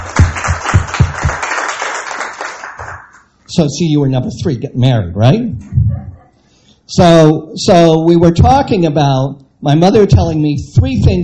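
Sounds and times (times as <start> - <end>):
small audience applause: 0.0 - 3.2
speech: 3.6 - 5.8, 6.9 - 11.2.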